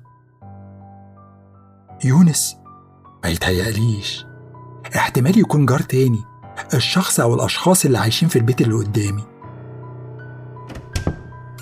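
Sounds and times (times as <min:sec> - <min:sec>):
speech: 0:02.0 - 0:02.6, 0:03.2 - 0:09.3
door opening with wooden thunks and rattle: 0:10.6 - 0:11.5.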